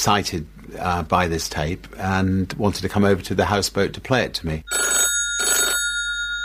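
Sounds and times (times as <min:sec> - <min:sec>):
speech: 0:00.0 - 0:04.8
telephone bell ringing: 0:04.7 - 0:06.4.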